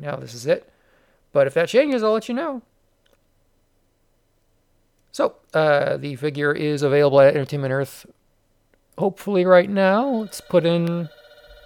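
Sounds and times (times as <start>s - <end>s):
speech: 0.0s - 2.7s, 5.2s - 8.2s, 9.0s - 11.2s
telephone ringing with an electronic trill: 9.9s - 11.6s.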